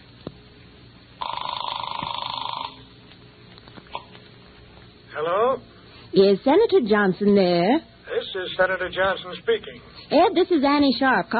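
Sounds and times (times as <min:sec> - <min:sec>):
telephone ring heard through a phone line: 0:01.2 - 0:02.9
speech: 0:06.1 - 0:11.3.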